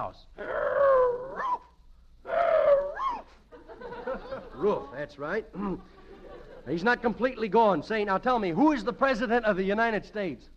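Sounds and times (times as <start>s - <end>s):
speech: 0.0s - 0.6s, 4.6s - 6.0s, 6.6s - 10.5s
man yelping like a dog: 0.4s - 1.7s, 2.3s - 3.3s
laughter: 3.5s - 7.0s.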